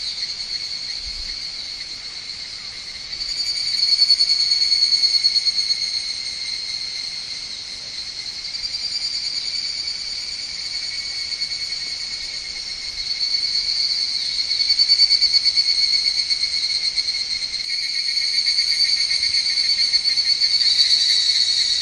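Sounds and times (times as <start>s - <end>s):
higurashi cicada shrill pulsing drone: 0.0s - 21.7s.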